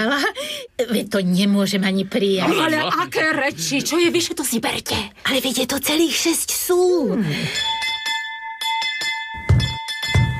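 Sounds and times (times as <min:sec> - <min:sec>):
speech: 0:00.0 - 0:07.9
doorbell rung insistently: 0:07.5 - 0:10.3.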